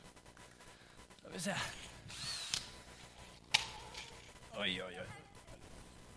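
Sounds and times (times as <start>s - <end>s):
speech: 1.4s - 2.2s, 4.6s - 5.2s
power drill driving screws to join two modules together: 2.1s - 2.7s.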